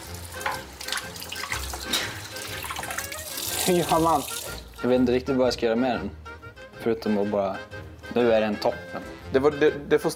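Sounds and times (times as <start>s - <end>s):
water running from a kitchen tap into a sink: 0.0s - 4.9s
speech: 3.7s - 6.2s, 6.8s - 10.1s.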